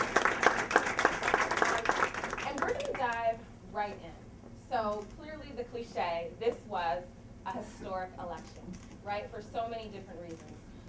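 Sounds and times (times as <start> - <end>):
audience applause for panelists: 0.0 - 3.1
speech: 4.7 - 10.7.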